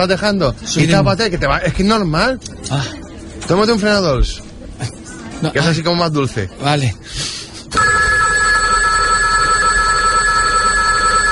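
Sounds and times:
speech: 0.0s - 7.9s
telephone bell ringing loudly: 7.7s - 11.2s.

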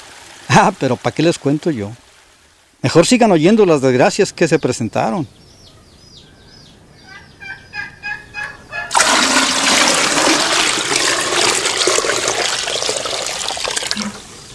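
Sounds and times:
speech: 0.6s - 2.0s, 2.8s - 5.4s
water poured from a bucket to fill a washbasin: 8.9s - 14.5s.

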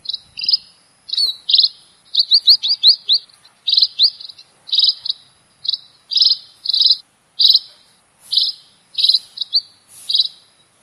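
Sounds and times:
red-throated parrotfinch calling, Erythrura psittacea: 0.0s - 10.7s.

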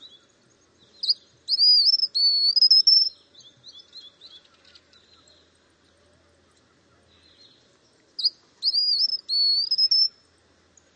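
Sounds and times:
faint soft bird twitters: 0.0s - 5.5s, 6.4s - 10.9s
white-naped xenopsaris (Xenopsaris albinucha) singing: 1.0s - 4.4s, 8.2s - 10.2s.

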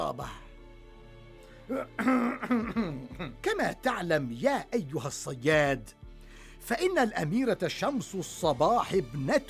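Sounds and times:
speech: 0.1s - 0.4s, 1.7s - 6.0s, 6.6s - 9.4s
man clearing his throat: 1.7s - 3.4s
man coughing with a hand over his mouth: 1.7s - 3.5s.

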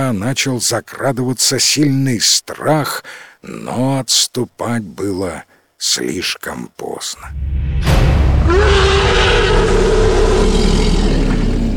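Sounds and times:
speech: 0.0s - 11.2s
dragon's guttural roar: 7.3s - 11.7s
rumbling, vibrating ground: 7.3s - 11.7s.

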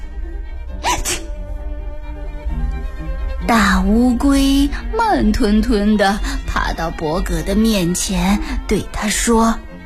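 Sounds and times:
person sneezing: 0.8s - 1.3s
speech: 3.5s - 9.7s.

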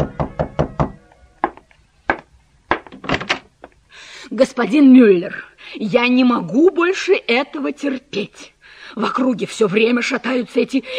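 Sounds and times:
knocking on a door: 0.0s - 3.2s
speech: 4.4s - 10.9s.

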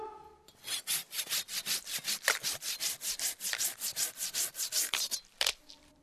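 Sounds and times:
hand saw cutting through wood: 0.5s - 5.3s.

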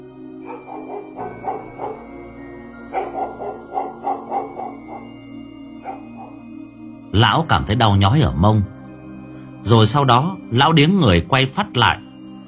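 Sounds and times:
dog barking: 0.4s - 2.2s, 2.8s - 5.2s, 5.8s - 6.4s
speech: 7.2s - 8.8s, 9.6s - 12.1s.

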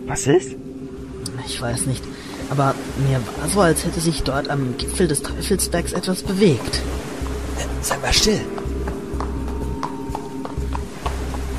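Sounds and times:
speech: 0.0s - 0.7s, 1.3s - 8.6s
riderless black horse hooves clip-clopping: 8.4s - 11.5s.

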